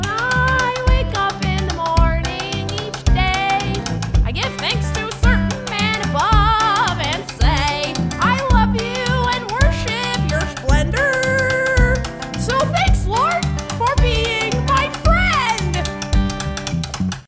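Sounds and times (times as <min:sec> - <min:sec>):
country music stem: 0:00.0 - 0:17.2.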